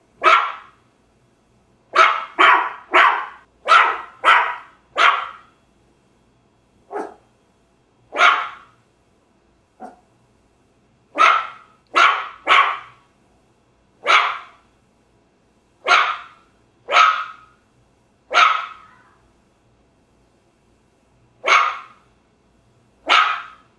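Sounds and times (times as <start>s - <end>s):
small dog barking: 0.2s - 0.8s, 1.9s - 5.5s, 6.9s - 7.3s, 8.1s - 8.8s, 9.8s - 10.1s, 11.2s - 13.0s, 14.0s - 14.6s, 15.8s - 17.6s, 18.3s - 19.2s, 21.4s - 22.0s, 23.0s - 23.7s.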